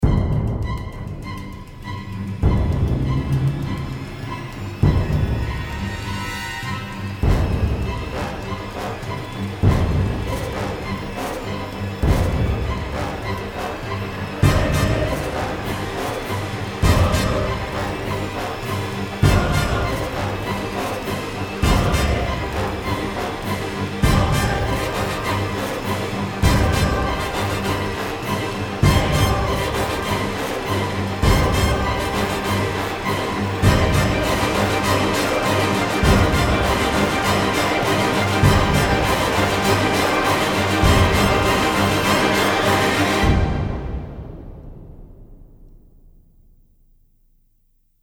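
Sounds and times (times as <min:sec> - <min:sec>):
dramatic riser: 0:00.0 - 0:46.4.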